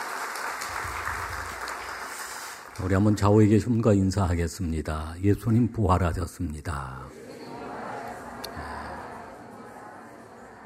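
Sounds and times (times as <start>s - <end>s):
church congregation clapping for a choir at an Easter service: 0.0s - 3.6s
speech: 2.8s - 7.2s.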